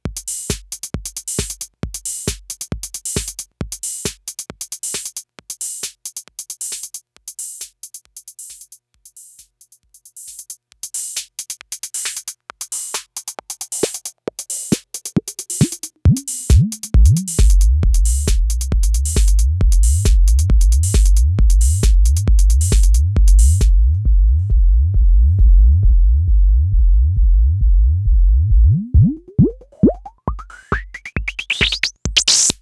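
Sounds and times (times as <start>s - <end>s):
808 drum machine bass: 0.0s - 32.6s.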